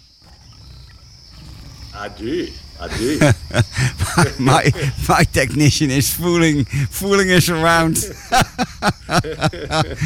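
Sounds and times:
high insect-like buzz: 0.0s - 10.0s
lion roaring: 0.2s - 3.6s
speech: 2.0s - 10.0s
laughter: 2.8s - 5.4s, 7.8s - 10.0s.

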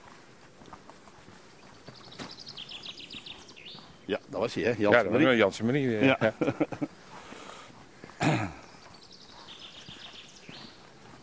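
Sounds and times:
steady outdoor noise: 0.0s - 11.2s
common chaffinch singing: 1.7s - 6.1s, 8.5s - 10.9s
speech: 4.1s - 7.0s
laughter: 5.8s - 7.0s.

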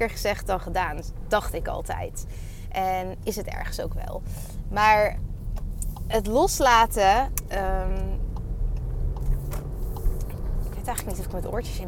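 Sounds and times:
speech: 0.0s - 5.3s, 6.1s - 8.2s, 10.9s - 11.8s
police car driving past: 7.9s - 11.8s.

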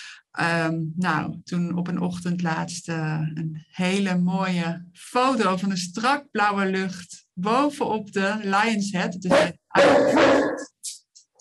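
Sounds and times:
speech: 0.4s - 10.7s
dog barking: 9.3s - 10.7s.

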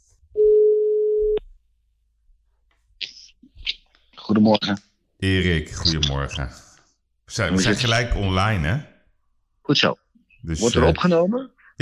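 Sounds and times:
telephone ringback tone while placing a phone call: 0.4s - 1.3s
speech: 4.3s - 6.7s, 7.3s - 8.9s, 9.6s - 11.8s.

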